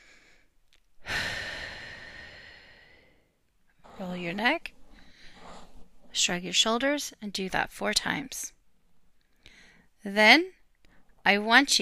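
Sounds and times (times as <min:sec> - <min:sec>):
deep breath exhale during a relaxation exercise: 0:00.0 - 0:06.2
speech: 0:04.0 - 0:04.8, 0:06.2 - 0:08.6, 0:10.0 - 0:10.6, 0:11.2 - 0:11.8.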